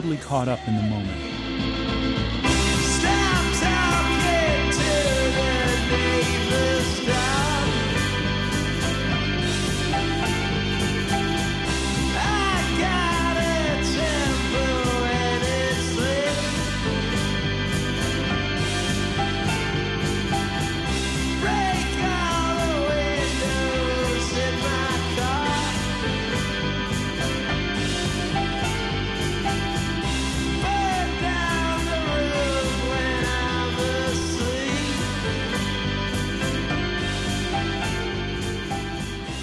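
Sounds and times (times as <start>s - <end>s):
rough male voice shouting and wailing: 0.0s - 1.3s
speech: 0.0s - 1.4s
loud driving rock song with guitars bass and drums: 0.0s - 39.4s.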